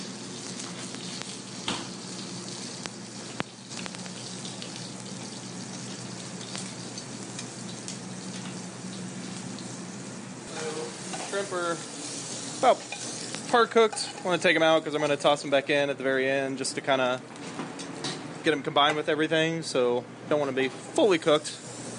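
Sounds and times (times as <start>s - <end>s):
blanched seasoned potatoes searing on a hot plancha flattop: 0.0s - 14.1s
brief crackles and clicks: 2.8s - 4.2s
speech: 11.4s - 11.9s, 12.6s - 12.9s, 13.5s - 17.4s, 18.4s - 21.6s.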